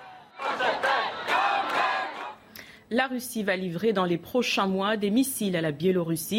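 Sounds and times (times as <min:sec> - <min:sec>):
large crowd gathered in the street chanting in unison in solidarity: 0:00.0 - 0:02.4
speech: 0:02.9 - 0:06.3.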